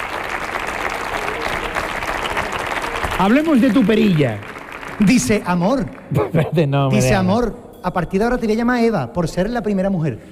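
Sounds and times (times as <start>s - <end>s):
audience applauding: 0.0s - 6.2s
speech: 3.2s - 10.3s.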